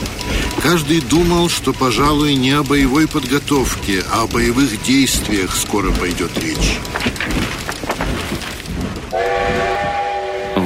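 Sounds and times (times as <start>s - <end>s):
train rumbling along the rails: 0.0s - 10.6s
speech: 0.6s - 7.6s
train horn blast: 9.1s - 10.6s.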